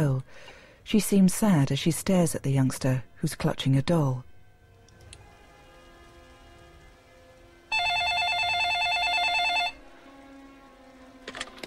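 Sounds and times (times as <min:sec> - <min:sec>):
speech: 0:00.0 - 0:04.3
electronic telephone ringer warbling between two pitches: 0:07.7 - 0:09.8.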